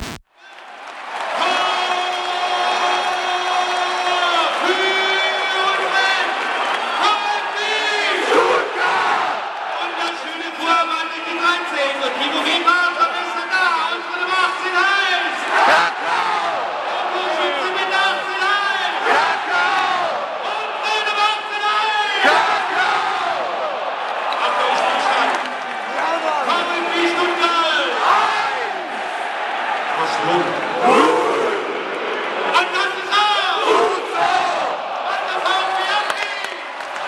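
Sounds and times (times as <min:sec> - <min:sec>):
huge stadium crowd roaring and chanting at a football match: 0:00.4 - 0:37.0.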